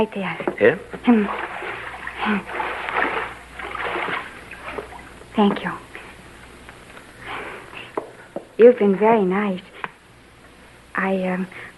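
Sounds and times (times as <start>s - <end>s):
speech: 0.0s - 1.5s, 2.2s - 2.6s, 5.4s - 5.8s, 8.6s - 9.7s, 11.0s - 11.7s
fish splashing into water in a kitchen: 1.0s - 5.4s.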